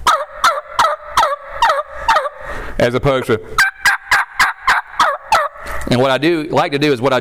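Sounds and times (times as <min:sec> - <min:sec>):
turkey call producing hen turkey yelps: 0:00.0 - 0:02.8, 0:03.4 - 0:06.1
speech: 0:02.8 - 0:03.7, 0:05.9 - 0:07.1.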